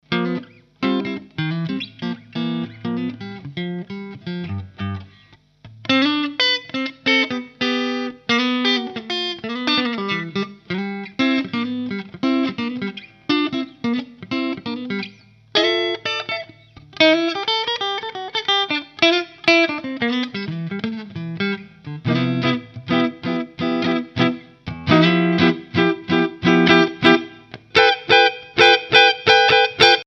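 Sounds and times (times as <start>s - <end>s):
Harley Benton TE-70 electric guitar played clean, neck pickup: 0.0s - 30.0s.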